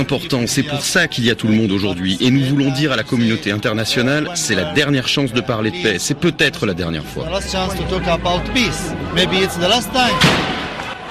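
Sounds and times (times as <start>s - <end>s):
speech: 0.0s - 10.6s
crowd shouting and chanting protest voices: 0.0s - 11.0s.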